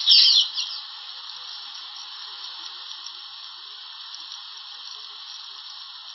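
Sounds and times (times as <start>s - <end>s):
swifts squabbling at a mud-and-moss nest near a waterfall: 0.0s - 6.1s.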